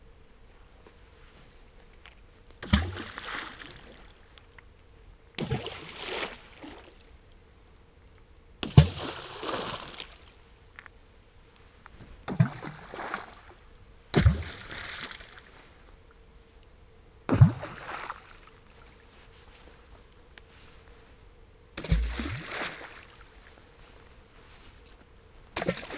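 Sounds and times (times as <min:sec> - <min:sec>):
stones thrown in all directions into water: 0:02.6 - 0:04.2, 0:05.4 - 0:07.0, 0:08.6 - 0:10.3, 0:12.3 - 0:15.5, 0:17.3 - 0:18.6, 0:21.8 - 0:23.4, 0:25.6 - 0:25.9.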